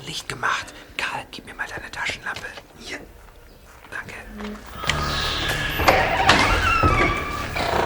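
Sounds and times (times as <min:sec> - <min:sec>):
speech: 0:00.1 - 0:03.0
door being pushed open with creaking hinges: 0:04.7 - 0:07.8.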